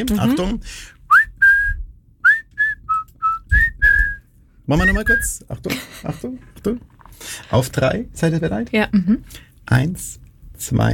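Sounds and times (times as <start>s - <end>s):
speech: 0.0s - 1.0s, 4.7s - 10.9s
person whistling a short tune with lips: 1.1s - 4.2s.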